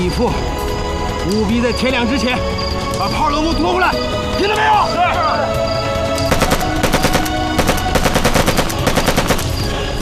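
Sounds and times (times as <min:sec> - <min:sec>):
speech: 0:00.1 - 0:05.7
gunfire aimed at a watchtower: 0:06.3 - 0:09.9.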